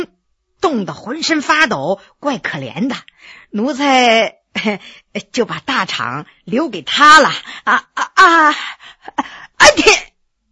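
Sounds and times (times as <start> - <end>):
speech: 0.0 - 10.1
person performing an imitated sneeze: 9.6 - 10.1.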